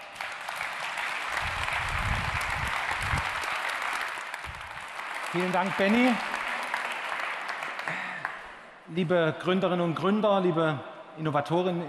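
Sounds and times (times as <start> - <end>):
audience applause: 0.0 - 8.6
speech: 5.4 - 6.3, 8.9 - 11.8.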